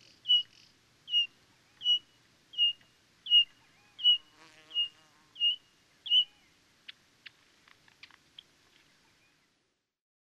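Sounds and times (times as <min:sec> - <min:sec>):
Pririt batis Batis pririt whistling: 0:00.3 - 0:00.5, 0:01.1 - 0:02.0, 0:02.6 - 0:06.4.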